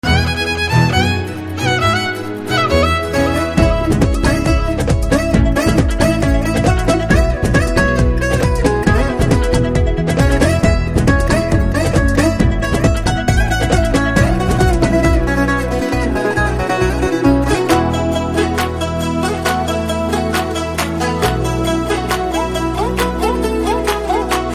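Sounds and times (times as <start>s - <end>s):
instrumental background tone: 0.0s - 24.5s.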